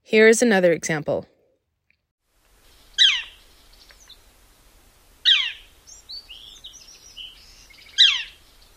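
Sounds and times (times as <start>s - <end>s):
speech: 0.1s - 1.3s
Northern Flicker woodpecker giving sharp downslurred calls: 2.6s - 4.3s, 5.2s - 8.7s
softer twittering bird notes: 2.6s - 4.4s, 5.2s - 8.7s.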